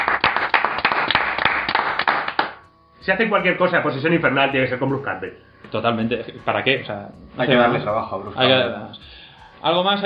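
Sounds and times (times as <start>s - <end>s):
applause: 0.0s - 2.7s
speech: 3.1s - 10.0s.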